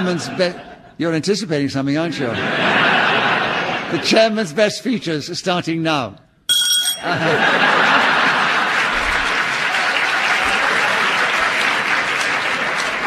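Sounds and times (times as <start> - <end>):
studio audience laughter: 0.0 - 1.0, 2.0 - 4.4, 7.0 - 13.0
speech: 0.0 - 2.9, 3.9 - 6.2, 7.0 - 8.0
large studio audience applause: 7.2 - 13.0.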